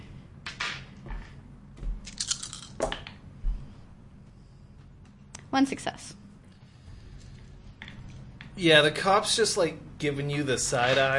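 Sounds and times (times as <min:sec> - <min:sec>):
dice clattering across a hard surface: 0:02.1 - 0:03.0
speech: 0:05.5 - 0:06.2, 0:08.6 - 0:11.1.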